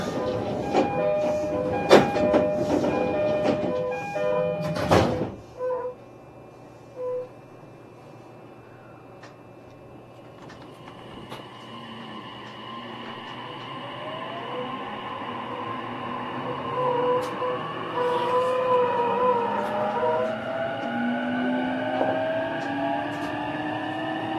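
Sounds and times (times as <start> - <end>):
commuter train doors closing at a station: 0.0 - 6.0, 10.2 - 24.3
commuter train door-closing melodic chime at a station: 0.5 - 5.0.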